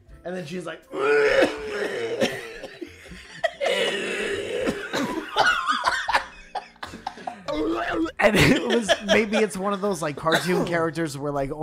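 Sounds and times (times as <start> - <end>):
speech: 0.2 - 2.2, 8.2 - 11.6
person making exaggerated raspy fake coughs: 1.0 - 6.3, 7.1 - 9.4, 10.2 - 10.8
throaty laughter-like sounds: 1.0 - 10.5.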